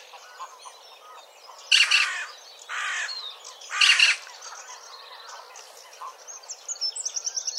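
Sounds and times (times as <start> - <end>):
Eurasian magpie Pica pica harsh scratchy chatter: 1.7 - 3.1, 3.7 - 4.7.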